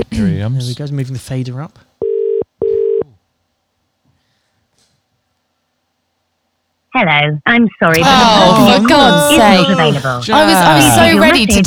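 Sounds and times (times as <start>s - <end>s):
speech: 0.0s - 1.9s, 6.9s - 11.6s
electronic ring tones from a phone line: 2.0s - 3.0s
laughter: 7.9s - 11.6s.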